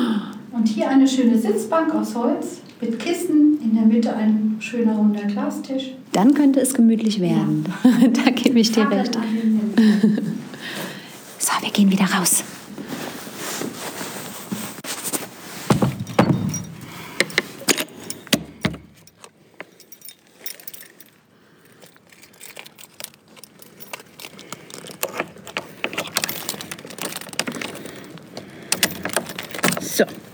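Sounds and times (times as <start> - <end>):
speech: 0.7 - 9.6, 11.6 - 12.6
shuffling: 9.0 - 30.3
faint footsteps: 12.4 - 26.6
metallic rattling and clattering of keys and a latch being handled: 15.1 - 30.3
heavy tower door swinging and thudding shut: 15.7 - 19.1.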